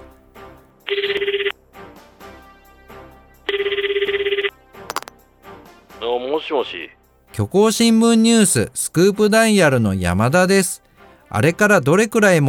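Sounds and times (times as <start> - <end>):
soft music: 0.0 - 12.4
electronic phone ringback tone during an outgoing call through a handset line: 3.5 - 4.5
speech: 6.5 - 12.4.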